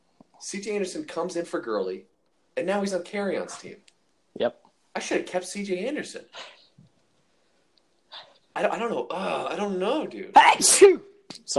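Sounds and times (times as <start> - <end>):
speech: 0.4 - 6.6, 8.6 - 11.5
person sneezing: 10.4 - 11.1.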